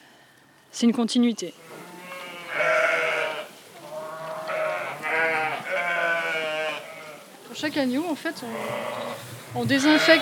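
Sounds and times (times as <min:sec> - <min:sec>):
speech: 0:00.8 - 0:01.6, 0:07.6 - 0:10.1
sheep bleating: 0:01.7 - 0:07.2, 0:08.4 - 0:10.1.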